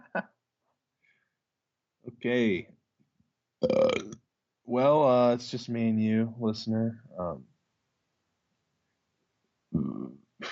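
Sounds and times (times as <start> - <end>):
speech: 2.2 - 2.7, 4.7 - 7.5
loud rumbling burp: 3.6 - 4.2, 9.8 - 10.1.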